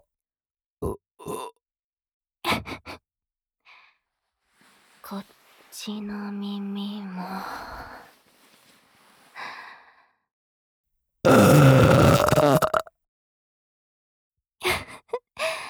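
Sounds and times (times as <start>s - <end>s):
speech: 5.1s - 7.9s
short sharp vocal grunts: 11.3s - 12.8s
soft breathy noises: 11.3s - 12.8s
long loud gravelly burp: 11.3s - 12.9s.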